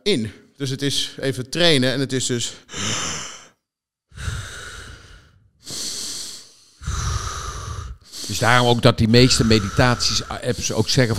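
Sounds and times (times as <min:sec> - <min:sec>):
speech: 0:00.0 - 0:03.0, 0:08.3 - 0:11.1
deep slow breathing close to the mic: 0:02.5 - 0:11.1.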